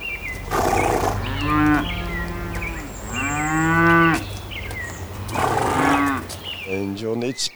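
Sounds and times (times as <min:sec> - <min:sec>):
breathy noisy bursts: 0:00.0 - 0:07.1
cows mooing in long deep calls: 0:00.0 - 0:07.2
steady rural background: 0:00.0 - 0:07.5
speech: 0:07.0 - 0:07.5.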